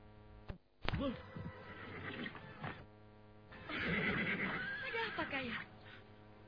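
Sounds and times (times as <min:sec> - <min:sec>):
steady hum: 0:00.0 - 0:06.4
speech: 0:01.0 - 0:01.3
horse whinnying: 0:01.0 - 0:02.9, 0:03.5 - 0:05.7.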